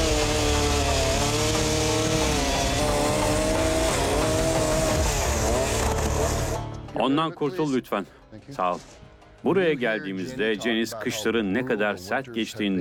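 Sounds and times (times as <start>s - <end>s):
chainsaw engine running indoors in a farmhouse living room: 0.0s - 6.7s
speech: 7.0s - 12.7s.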